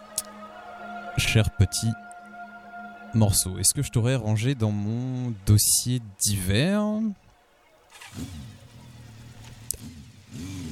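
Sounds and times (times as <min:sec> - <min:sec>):
speech: 0:01.2 - 0:02.1, 0:03.1 - 0:07.2, 0:07.9 - 0:08.4
motorcycle engine revving: 0:07.8 - 0:10.6.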